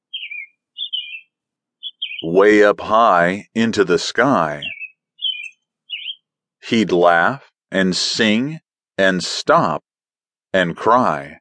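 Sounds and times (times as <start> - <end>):
bird chirps: 0.0 - 2.4, 4.4 - 6.3
speech: 2.2 - 4.8, 6.7 - 9.9, 10.5 - 11.4.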